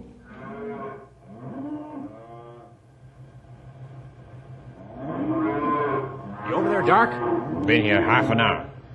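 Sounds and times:
herd of cattle mooing: 0.2s - 2.8s, 4.8s - 8.6s
speech: 6.9s - 8.7s.

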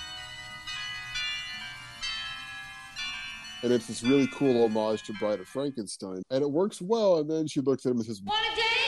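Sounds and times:
bright chimes ringing: 0.0s - 6.6s
speech: 3.6s - 8.7s.

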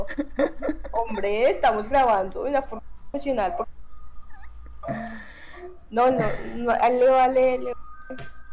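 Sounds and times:
speech: 0.0s - 3.8s, 4.8s - 8.4s
low steady hum: 0.0s - 8.5s
faint squeaky sounds: 0.9s - 8.5s
small dog whining: 4.0s - 4.8s.

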